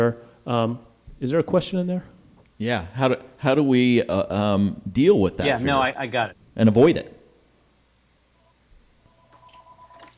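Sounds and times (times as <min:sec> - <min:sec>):
speech: 0:00.0 - 0:07.2
low noise: 0:00.0 - 0:10.1
mobile phone short electronic ringtone: 0:09.1 - 0:10.1.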